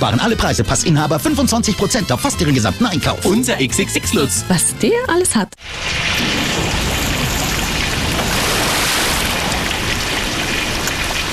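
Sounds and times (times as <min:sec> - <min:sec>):
speech: 0:00.0 - 0:06.6
water pouring and flooding into a cellar: 0:05.6 - 0:11.3.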